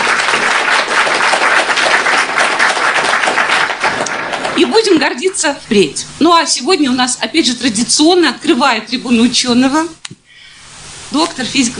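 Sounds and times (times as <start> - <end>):
audience applause in a planetarium: 0.0 - 5.0
speech: 4.6 - 10.1, 11.1 - 11.7.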